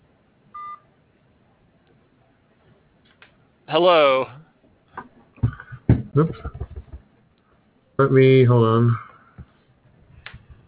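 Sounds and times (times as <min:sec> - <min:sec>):
quiet hiss: 0:00.0 - 0:10.6
electronic phone keypad beep as a call is hung up: 0:00.6 - 0:00.8
speech: 0:03.7 - 0:04.4, 0:06.2 - 0:06.6, 0:08.0 - 0:09.0.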